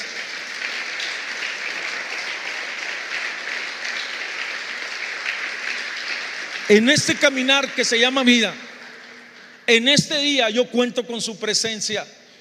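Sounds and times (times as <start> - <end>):
crowd of many hands clapping: 0.0 - 9.8
speech: 6.7 - 8.6, 9.7 - 12.2.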